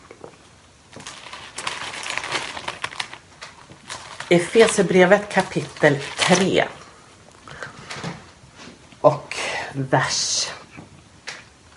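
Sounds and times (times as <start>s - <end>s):
thin Bible paper pages flipping: 0.9s - 6.8s
speech: 4.3s - 6.8s, 9.8s - 10.5s.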